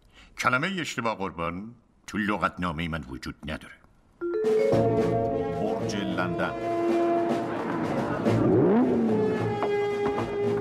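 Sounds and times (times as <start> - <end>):
speech: 0.4 - 3.8, 4.4 - 9.3
powerful sports car engine revving: 6.7 - 10.6
busy noise: 7.1 - 9.6.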